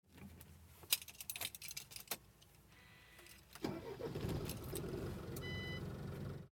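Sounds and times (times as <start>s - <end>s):
truck engine starting heard from inside: 3.6s - 6.5s.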